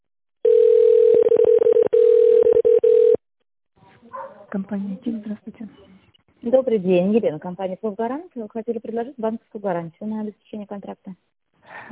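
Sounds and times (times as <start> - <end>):
telephone line tone while a call is forwarded to a secretary: 0.4 - 3.2
speech: 4.5 - 11.9.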